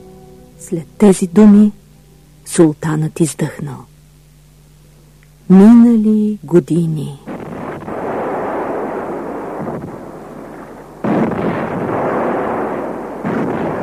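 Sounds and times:
speech: 0.6 - 1.8, 2.5 - 3.9, 5.5 - 7.3
heavy cannon booms fired in celebration: 7.2 - 13.8.

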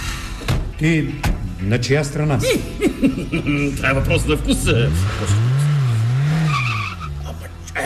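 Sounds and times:
car engine droning as it drives by: 0.0 - 7.8
speech: 0.8 - 5.6
laughter: 2.4 - 3.8
brief high tire-like squeal: 6.0 - 7.5.

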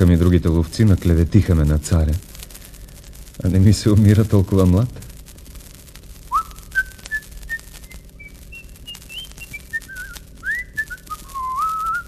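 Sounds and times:
speech: 0.0 - 2.3, 3.4 - 5.0
person whistling a wandering tune: 6.4 - 12.0.

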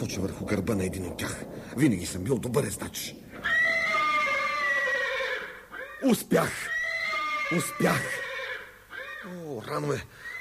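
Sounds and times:
speech: 0.1 - 3.5, 6.0 - 6.8, 7.5 - 8.2, 9.2 - 10.3
horse neighing: 3.3 - 10.3.

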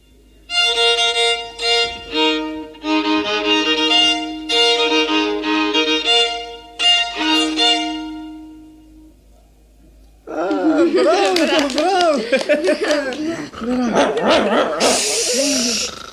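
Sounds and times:
pear wood violin playing a lively solo melody: 0.4 - 9.2
laughter: 10.3 - 15.9
dog that has just woken up barking: 13.9 - 15.3.

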